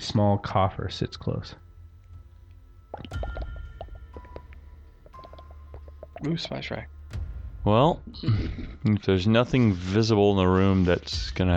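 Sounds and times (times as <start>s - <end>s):
speech: 0.1s - 1.6s, 3.0s - 3.4s, 6.2s - 7.0s, 7.6s - 11.5s
thick liquid bubbling and gurgling in a cauldron: 2.9s - 7.2s.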